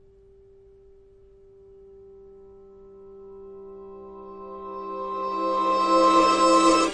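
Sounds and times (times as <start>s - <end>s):
long reversed C chord on guitars: 2.0s - 6.9s.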